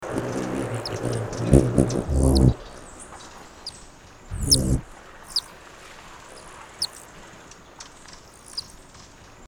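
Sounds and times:
Black-crested coquette: 0:00.2 - 0:02.7, 0:03.6 - 0:05.6, 0:06.8 - 0:07.0, 0:08.3 - 0:08.8.

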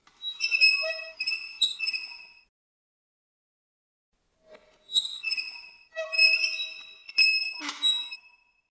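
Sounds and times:
metal squeak: 0:00.2 - 0:02.5, 0:04.5 - 0:08.6.

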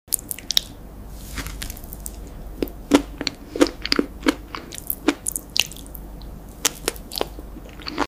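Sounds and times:
chewing fruit: 0:01.6 - 0:08.0.

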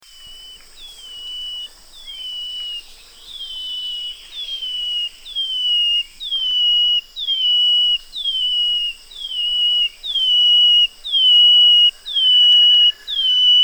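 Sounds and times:
Brown-headed greenlet giving clear high whistles: 0:04.6 - 0:13.6.

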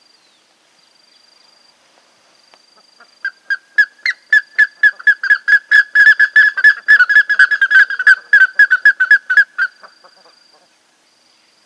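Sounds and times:
Plumbeous ibis calling with strident whistled notes: 0:03.2 - 0:10.2.

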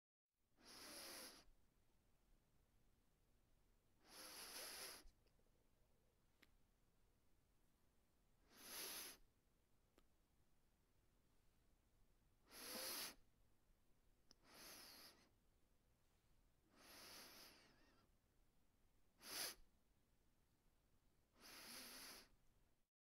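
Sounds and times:
nose sniff: 0:00.6 - 0:01.5, 0:04.0 - 0:05.2, 0:08.4 - 0:09.2, 0:12.5 - 0:13.2, 0:14.4 - 0:15.3, 0:16.7 - 0:18.1, 0:19.2 - 0:19.6, 0:21.4 - 0:22.4.

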